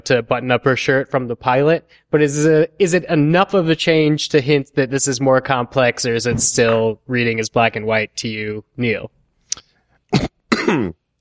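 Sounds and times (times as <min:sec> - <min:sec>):
speech: 0:00.0 - 0:09.2, 0:10.1 - 0:11.0
person coughing: 0:10.1 - 0:11.0.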